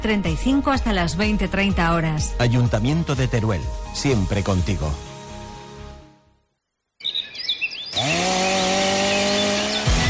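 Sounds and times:
speech: 0:00.0 - 0:05.1
birds chirping: 0:07.0 - 0:10.0
chainsaw running and cutting wood: 0:07.9 - 0:10.0.

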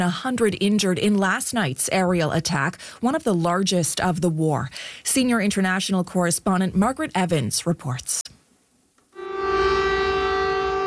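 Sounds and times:
speech: 0:00.0 - 0:08.4
air raid siren in a city at night during an aerial attack: 0:09.2 - 0:10.8.

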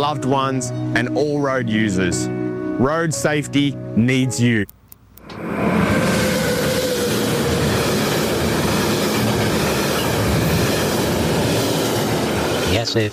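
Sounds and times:
speech: 0:00.0 - 0:04.8, 0:12.8 - 0:13.1
train rumbling along rail track: 0:05.2 - 0:13.1.

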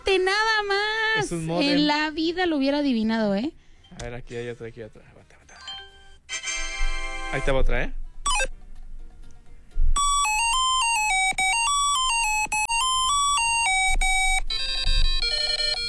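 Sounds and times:
speech: 0:00.2 - 0:05.2, 0:07.3 - 0:08.6
electronic beeping from a Brick Game handheld video game: 0:08.2 - 0:08.5, 0:10.0 - 0:15.8.

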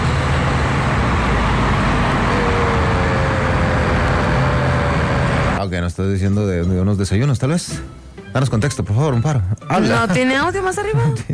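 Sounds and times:
road traffic with passing vehicles: 0:00.0 - 0:05.6
vehicle engines droning: 0:00.0 - 0:05.6
speech: 0:05.7 - 0:11.3.

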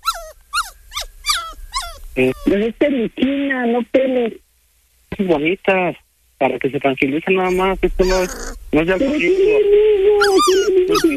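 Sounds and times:
pet dog whimpering and whining: 0:00.0 - 0:02.6, 0:07.5 - 0:11.1
speech: 0:02.2 - 0:04.4, 0:05.2 - 0:11.1.

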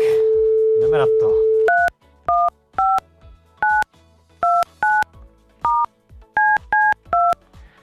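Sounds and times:
touch-tone beeps of a telephone number being dialed: 0:00.0 - 0:03.0, 0:03.6 - 0:03.8, 0:04.4 - 0:05.0, 0:05.7 - 0:07.4.

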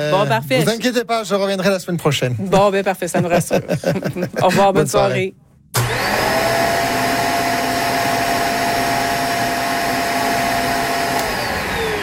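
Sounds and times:
speech: 0:00.0 - 0:05.9
laughter: 0:03.0 - 0:05.2
vacuum cleaner running: 0:05.8 - 0:12.0.

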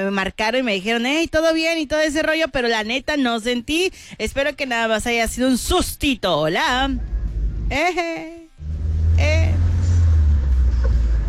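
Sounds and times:
speech: 0:00.0 - 0:07.1, 0:07.7 - 0:08.4, 0:09.2 - 0:09.6
Volkswagen Beetle engine idling with deep rumble: 0:08.6 - 0:11.2.

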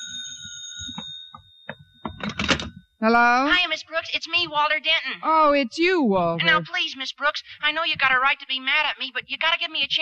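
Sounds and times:
telephone ringing with a bright bell tone: 0:00.0 - 0:02.9
speech: 0:03.0 - 0:10.0.

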